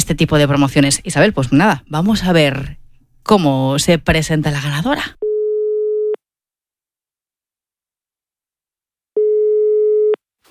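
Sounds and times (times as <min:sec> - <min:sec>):
speech: 0:00.1 - 0:05.3
ringback tone of an outgoing telephone call placed from Coruña: 0:09.2 - 0:10.2.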